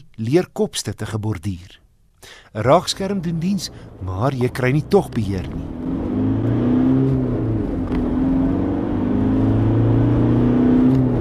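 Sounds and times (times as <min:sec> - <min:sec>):
speech: 0:00.2 - 0:01.8, 0:02.5 - 0:05.8
2.5 turbo diesel pickup engine revving: 0:02.6 - 0:11.2.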